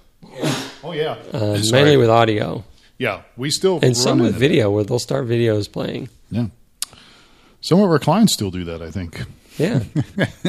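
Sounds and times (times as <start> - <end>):
person sneezing: 0.2 - 0.8, 3.9 - 4.4
speech: 0.4 - 6.6, 7.6 - 10.4
laughter: 3.8 - 4.5, 9.8 - 10.4.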